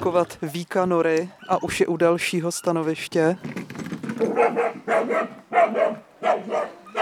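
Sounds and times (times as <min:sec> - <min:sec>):
speech: 0:00.0 - 0:06.9
dog barking inside an artificial burrow during an earthdog hunting test: 0:04.2 - 0:06.9.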